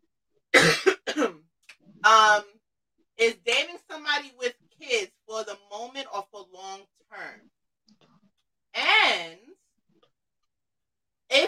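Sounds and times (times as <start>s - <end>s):
person coughing: 0.6s - 1.4s
speech: 2.1s - 2.5s, 3.2s - 7.6s.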